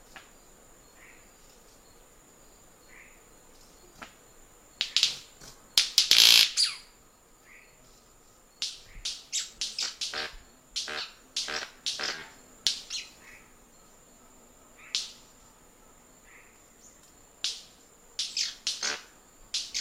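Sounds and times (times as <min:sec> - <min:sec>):
faint steady high hiss: 0:00.0 - 0:19.7
White-bearded manakin making sharp cracking snaps: 0:04.8 - 0:06.6, 0:08.6 - 0:13.0, 0:14.8 - 0:15.3, 0:17.0 - 0:19.7.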